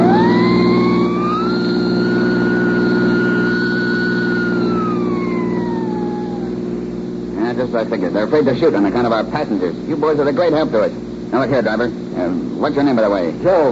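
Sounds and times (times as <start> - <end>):
car engine racing along: 0.0 - 6.8
police siren wailing: 0.0 - 6.8
speech: 7.8 - 13.7.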